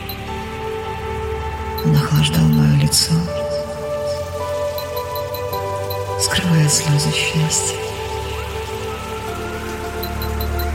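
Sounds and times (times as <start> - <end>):
light drizzling rain: 0.0 - 10.7
quiet sustained tonal drone: 0.0 - 10.7
speech: 1.8 - 3.5, 6.2 - 8.0.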